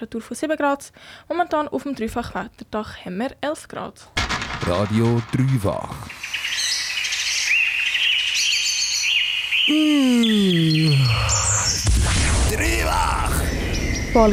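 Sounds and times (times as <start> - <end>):
speech: 0.0 - 6.5, 9.7 - 13.3, 14.1 - 14.3
birds singing and chirping in high bright trills: 5.0 - 14.3
lower drawn-out descending call: 8.1 - 11.8.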